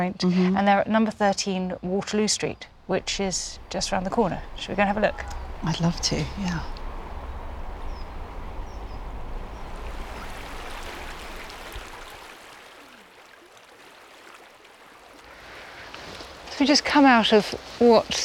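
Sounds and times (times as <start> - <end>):
speech: 0.0 - 6.8, 16.6 - 18.2
faint bird chirps: 2.3 - 12.1
low rumble: 2.6 - 12.2
river flowing: 2.6 - 18.2.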